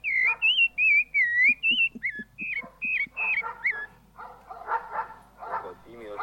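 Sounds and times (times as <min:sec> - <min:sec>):
bright warbling bird whistles: 0:00.0 - 0:04.0
dog barking in short yaps: 0:00.2 - 0:00.6, 0:02.5 - 0:06.2.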